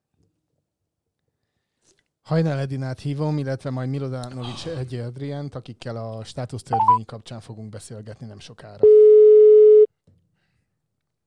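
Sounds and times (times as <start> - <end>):
speech: 2.3 - 9.1
telephone call tone: 6.8 - 7.0, 8.8 - 9.9.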